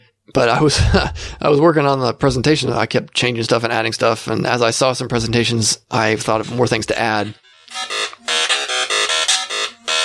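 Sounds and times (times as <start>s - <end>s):
speech: 0.3s - 8.2s
phone ringing with Atari 8-bit chiptune ringtone: 7.2s - 10.0s.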